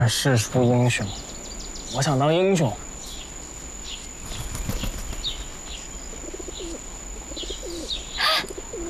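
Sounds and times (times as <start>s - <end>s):
speech: 0.0s - 1.3s, 1.9s - 2.9s
rustling flutter: 4.0s - 6.8s
pigeon cooing: 6.1s - 8.8s.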